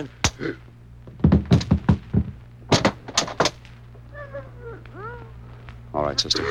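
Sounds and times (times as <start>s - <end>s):
speech: 0.0s - 0.7s, 6.1s - 6.4s
door creaking as it swings: 0.0s - 5.6s
heavy wooden thumps and rattles of a door being opened: 0.2s - 3.6s
laughter: 4.0s - 6.4s.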